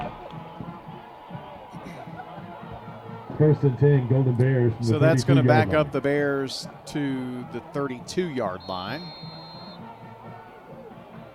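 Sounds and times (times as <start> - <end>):
football crowd in the stands roaring with overlapping voices: 0.0 - 11.3
laughter: 1.7 - 3.0
speech: 3.4 - 9.3.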